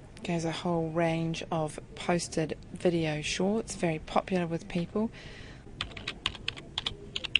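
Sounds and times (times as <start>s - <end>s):
speech: 0.2s - 5.4s
rapid typing on a computer keyboard as a search term is entered: 5.8s - 7.3s.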